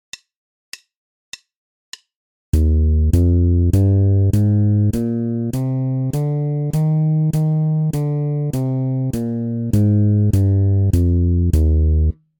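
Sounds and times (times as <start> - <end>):
bass playing E-flat major scale exercise: 2.6 - 12.2.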